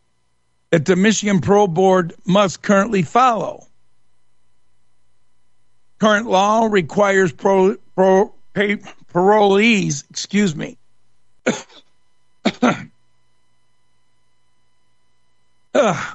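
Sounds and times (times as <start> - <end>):
speech: 0.7 - 3.7, 6.0 - 10.8, 11.5 - 11.8, 12.5 - 12.9, 15.7 - 16.1
person coughing while reading aloud: 11.4 - 13.0, 15.8 - 16.1.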